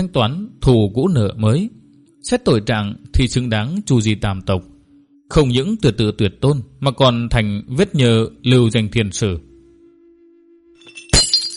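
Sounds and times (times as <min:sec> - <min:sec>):
speech: 0:00.0 - 0:04.7, 0:05.3 - 0:09.5
bright clinking fragments of breakage: 0:10.8 - 0:11.5
something crashing and shattering behind a curtain: 0:10.8 - 0:11.5.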